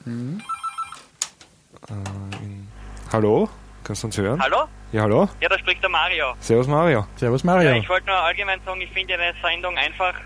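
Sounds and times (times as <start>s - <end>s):
speech: 0.1s - 0.6s, 1.8s - 2.2s, 3.1s - 10.2s
electronic telephone ringtone signalling an incoming call: 0.4s - 1.0s.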